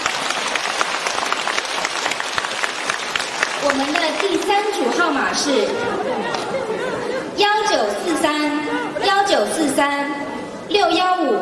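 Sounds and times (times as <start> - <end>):
audience applause: 0.0 - 7.1
speech: 3.7 - 11.4
laughter: 4.8 - 9.4.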